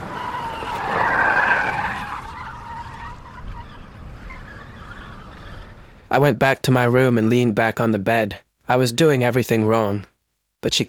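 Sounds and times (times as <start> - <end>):
car engine roaring in a garden: 0.0 - 3.4
car tires squealing on an asphalt road: 0.0 - 6.1
speech: 6.1 - 10.8.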